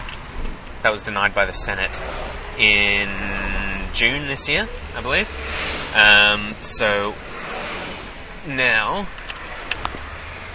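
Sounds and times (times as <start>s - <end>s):
road traffic rumble around a moving car: 0.0s - 10.5s
speech: 0.8s - 7.4s, 8.4s - 9.2s.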